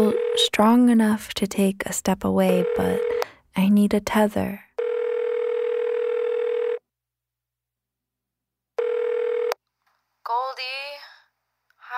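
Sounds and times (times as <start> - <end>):
telephone ringing with an incoming call: 0.0 - 0.6, 2.5 - 3.3, 4.8 - 6.8, 8.8 - 9.6
speech: 0.4 - 4.6.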